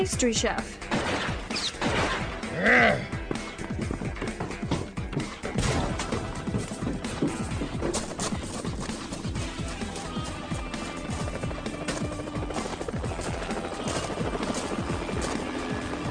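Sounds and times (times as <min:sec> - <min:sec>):
speech: 0:00.0 - 0:02.0, 0:02.6 - 0:03.2
helicopter rotor chopping at a rooftop helicopter pad: 0:02.3 - 0:16.0.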